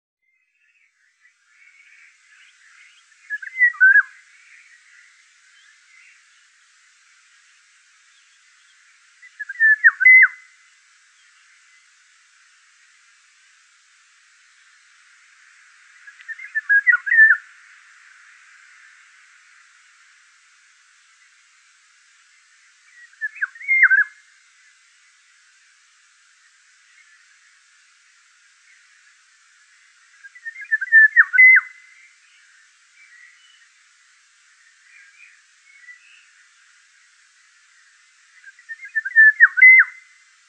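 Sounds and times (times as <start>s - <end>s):
Pirol Oriolus oriolus singing: 0.2s - 13.2s, 14.1s - 40.4s.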